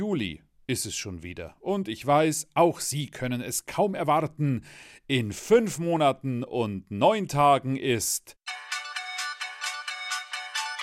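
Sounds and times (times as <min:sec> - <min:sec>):
speech: 0:00.0 - 0:08.6
phone ringtone playing a bright electronic melody: 0:08.5 - 0:10.8.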